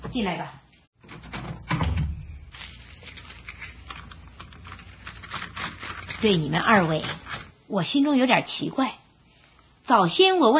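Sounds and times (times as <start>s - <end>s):
speech: 0.1s - 0.6s, 6.2s - 9.0s, 9.9s - 10.5s
heavy wooden house door thud and rattle: 1.0s - 2.4s.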